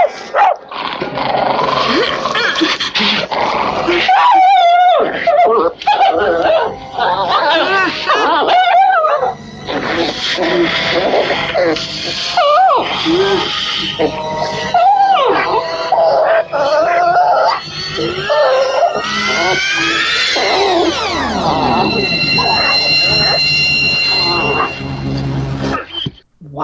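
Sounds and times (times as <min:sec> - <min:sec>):
noisy commotion: 0:00.1 - 0:26.6
raised voices: 0:01.8 - 0:26.6
dog whining and yelping in distress while being strangled: 0:03.9 - 0:24.9.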